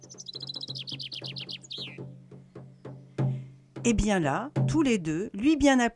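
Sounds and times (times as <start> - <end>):
skylarks singing overhead: 0.0 - 5.2
light wind: 0.0 - 5.9
speech: 3.8 - 5.9.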